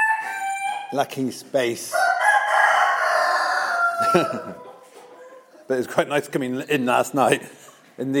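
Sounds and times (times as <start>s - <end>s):
rooster crowing: 0.0s - 0.9s, 1.9s - 4.7s
speech: 0.9s - 2.1s, 4.0s - 4.7s, 5.7s - 8.1s.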